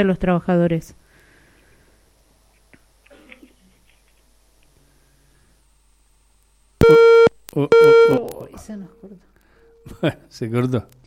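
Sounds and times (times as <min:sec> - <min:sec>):
speech: 0:00.0 - 0:01.0, 0:07.6 - 0:11.0
telephone busy tone after a cut-off call: 0:06.8 - 0:08.3.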